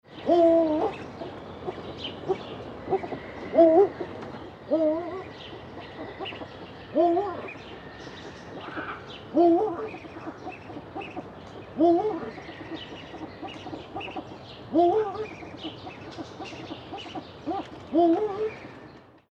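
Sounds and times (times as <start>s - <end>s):
eagle owl call sequences: 0.2s - 18.8s.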